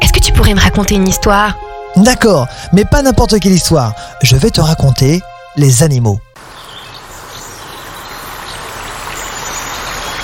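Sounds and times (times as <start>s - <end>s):
speech: 0.2s - 6.3s
stream water bubbling as if boiling, stirred by piranhas: 6.4s - 10.2s.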